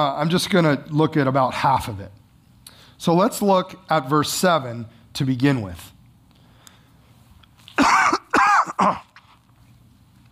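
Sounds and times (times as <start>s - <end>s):
speech: 0.0s - 2.2s, 3.0s - 5.9s, 8.8s - 9.1s
person coughing with a rough throat-clearing quality: 7.8s - 9.2s.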